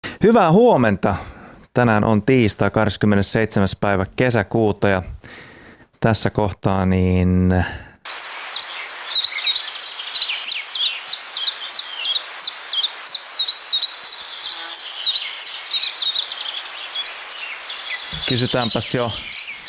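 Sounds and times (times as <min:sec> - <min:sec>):
speech: 0:00.2 - 0:08.4, 0:18.3 - 0:19.3
common chiffchaff singing two-note chirps: 0:08.1 - 0:19.6
faint bird calls: 0:08.1 - 0:19.6.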